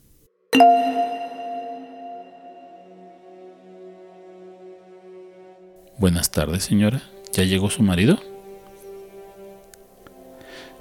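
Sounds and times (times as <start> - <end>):
speech: 0.6 - 1.3, 6.0 - 8.3
message notification chime on a phone: 0.6 - 2.8.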